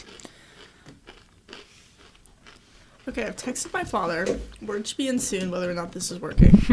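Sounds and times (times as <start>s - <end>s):
chewing and biting on food: 0.0s - 4.7s
speech: 3.1s - 6.7s.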